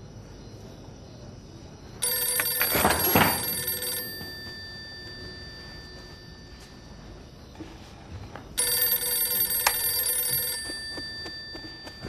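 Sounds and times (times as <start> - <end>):
telephone ringing: 2.0 - 7.9, 8.5 - 12.0.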